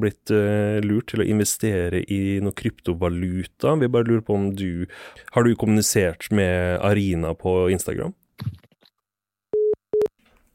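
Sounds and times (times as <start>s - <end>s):
speech: 0.0s - 8.6s
phone busy tone beeps after a call hangs up: 9.6s - 10.1s.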